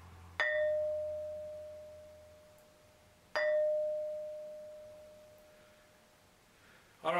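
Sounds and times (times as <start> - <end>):
struck stone tool ringing like a bell: 0.4 - 5.5.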